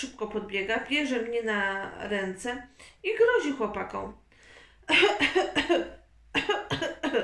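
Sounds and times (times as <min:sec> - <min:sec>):
speech: 0:00.0 - 0:04.2, 0:04.9 - 0:07.2
harsh coughing after swallowing water: 0:04.9 - 0:07.2.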